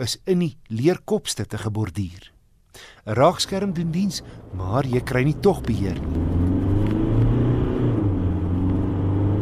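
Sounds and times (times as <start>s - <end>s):
speech: 0.0s - 6.2s
2.5 turbo diesel bakkie engine running: 3.2s - 9.3s.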